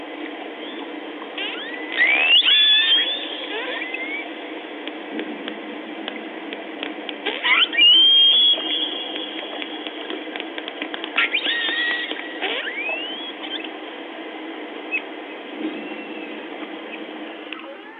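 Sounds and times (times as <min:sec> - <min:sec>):
pilot whale rising swept whistles: 0:00.6 - 0:04.3, 0:07.3 - 0:09.7, 0:11.2 - 0:13.7, 0:15.7 - 0:16.5
trains of sharp pilot whale clicks: 0:08.5 - 0:12.2.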